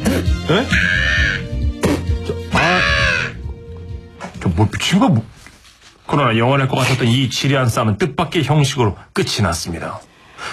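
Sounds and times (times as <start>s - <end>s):
speech: 0.5s - 1.1s, 4.6s - 5.4s, 6.1s - 10.5s
crow cawing: 0.7s - 1.6s, 2.5s - 3.5s.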